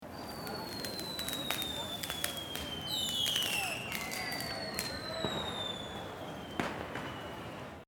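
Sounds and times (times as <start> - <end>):
New Year's Eve whistling firework: 0.0 - 7.8.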